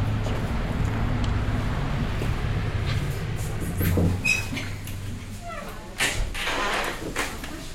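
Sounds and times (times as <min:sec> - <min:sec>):
heavy trucks rumbling and idling at a sugar beet factory: 0:00.0 - 0:06.4.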